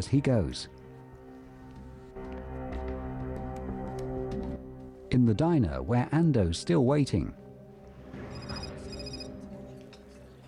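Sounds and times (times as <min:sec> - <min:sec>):
speech: 0:00.0 - 0:00.8, 0:05.2 - 0:07.4
steady dense noise in a diner: 0:00.0 - 0:10.4
mobile phone ringing in a bag in a diner: 0:08.3 - 0:09.4.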